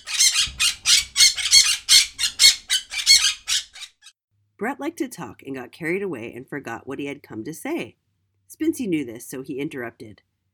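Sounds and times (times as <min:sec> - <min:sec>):
parrot squawking: 0:00.0 - 0:04.1
speech: 0:04.6 - 0:08.0, 0:08.6 - 0:10.3.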